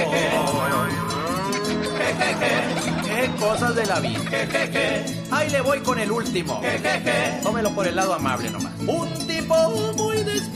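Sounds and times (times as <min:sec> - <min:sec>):
laughter: 0:00.0 - 0:05.6, 0:06.6 - 0:07.4
cow mooing: 0:00.2 - 0:03.0
speech: 0:03.4 - 0:10.5.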